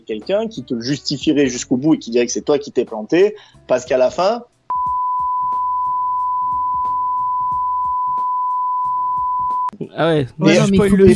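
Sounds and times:
speech: 0.0s - 4.5s, 9.9s - 11.1s
long high-pitched censor bleep: 4.7s - 9.7s.

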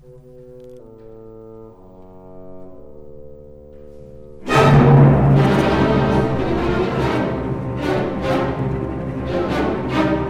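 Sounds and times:
full orchestra playing a loud chord in a symphony development section: 4.4s - 10.2s.

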